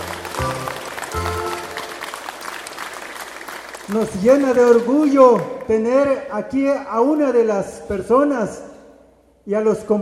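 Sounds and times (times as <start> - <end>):
crowd clapping in a large gathering: 0.0 - 6.4
speech: 3.9 - 8.7, 9.5 - 10.0.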